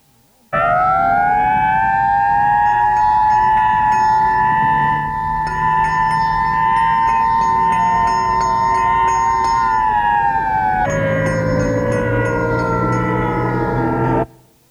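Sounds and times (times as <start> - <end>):
fire engine siren wailing: 0.5 - 14.6.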